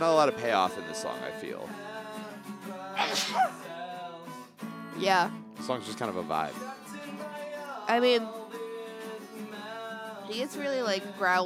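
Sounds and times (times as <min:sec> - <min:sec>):
speech: 0:00.0 - 0:01.9, 0:03.0 - 0:03.7, 0:05.0 - 0:06.8, 0:07.9 - 0:08.4, 0:10.3 - 0:11.4
person sneezing: 0:03.0 - 0:03.6.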